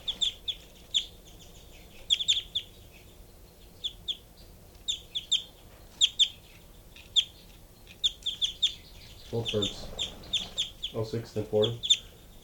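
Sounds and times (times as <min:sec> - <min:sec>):
two birds chirping: 0:00.0 - 0:12.4
speech: 0:09.4 - 0:09.9, 0:10.9 - 0:11.9.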